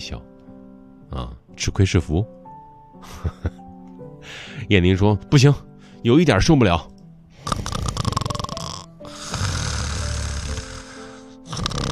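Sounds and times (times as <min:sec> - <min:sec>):
speech: 0:00.0 - 0:00.4, 0:01.1 - 0:02.4, 0:03.0 - 0:03.6, 0:04.2 - 0:06.9
person snoring: 0:07.4 - 0:11.9.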